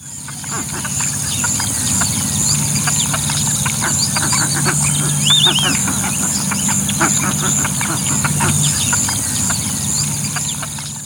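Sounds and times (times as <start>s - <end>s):
Roseate Spoonbill Platalea ajaja grunting clucks: 0.0s - 11.0s
steady high-pitched hum: 2.6s - 8.9s.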